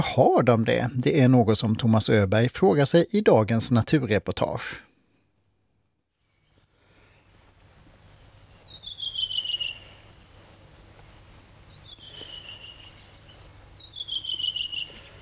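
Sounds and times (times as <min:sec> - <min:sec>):
speech: 0:00.0 - 0:04.9
redwing thrush singing whistled phrases: 0:08.7 - 0:10.0, 0:11.7 - 0:15.0.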